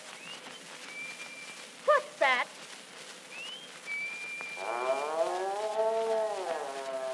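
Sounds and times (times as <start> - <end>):
faint high whistling tone: 0.1 - 1.6, 3.3 - 4.7
cow mooing: 4.6 - 7.1.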